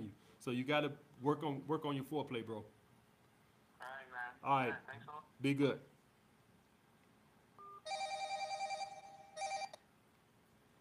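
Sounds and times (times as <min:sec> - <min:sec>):
speech: 0:00.4 - 0:02.8, 0:03.8 - 0:05.9
telephone ringing with a bright warbling electronic trill: 0:07.6 - 0:09.8.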